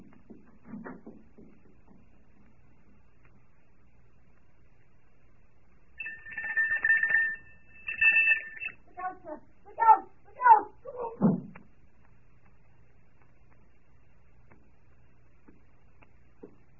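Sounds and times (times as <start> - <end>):
doorbell ringing loudly: 6.0 - 8.8.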